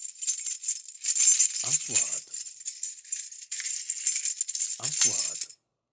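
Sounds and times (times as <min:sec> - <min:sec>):
safe keys sound effect: 0:01.2 - 0:05.5.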